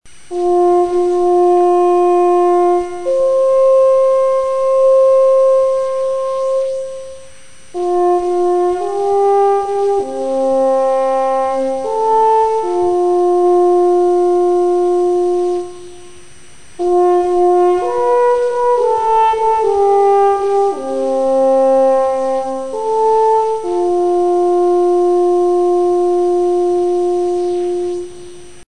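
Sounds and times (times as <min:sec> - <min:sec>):
tenor horn: 0:00.1 - 0:28.6.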